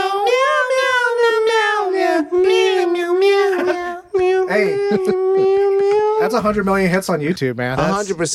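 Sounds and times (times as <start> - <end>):
person singing a tune in nasal meows imitating a cat: 0.0 - 6.5
speech: 4.6 - 5.6, 6.2 - 8.3.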